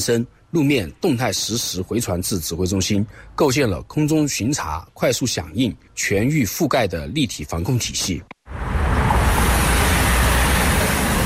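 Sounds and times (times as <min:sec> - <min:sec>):
speech: 0:00.0 - 0:08.8
dense roar of heavy highway traffic on an expressway in Yunnan China: 0:08.5 - 0:11.2.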